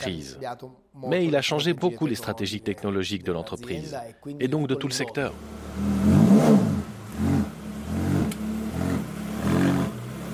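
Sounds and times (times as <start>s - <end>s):
speech: 0.0s - 6.1s
Ferrari car engine revving: 5.3s - 10.3s.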